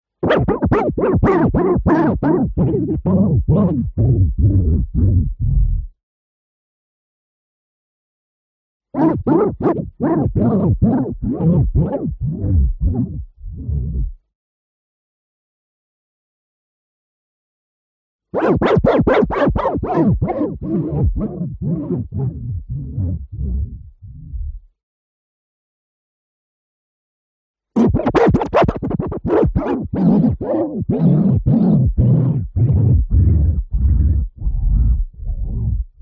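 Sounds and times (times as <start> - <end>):
tape recorder reel clean scratch: 0.2 - 5.3, 9.0 - 13.2, 18.4 - 23.7, 27.8 - 35.8.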